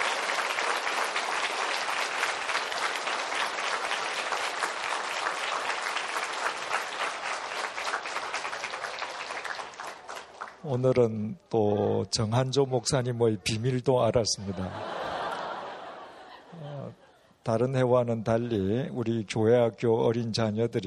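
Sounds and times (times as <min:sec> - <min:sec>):
large audience applauding: 0:00.0 - 0:10.8
speech: 0:10.7 - 0:15.0, 0:17.5 - 0:20.8
laughter: 0:14.4 - 0:17.3.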